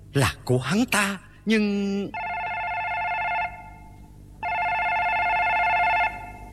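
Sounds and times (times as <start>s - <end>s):
speech: 0.2s - 2.2s
telephone ringing in long electronic bursts: 2.2s - 6.5s.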